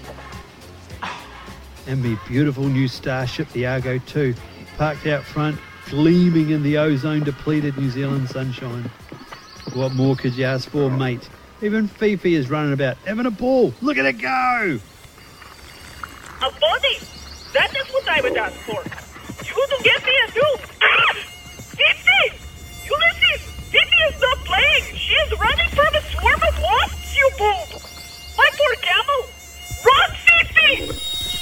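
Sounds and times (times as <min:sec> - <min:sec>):
speech: 0:01.8 - 0:09.0, 0:09.8 - 0:14.9, 0:18.1 - 0:19.0
swarm of wasps buzzing: 0:02.7 - 0:31.4
faint steady high-pitched hum: 0:13.6 - 0:31.4.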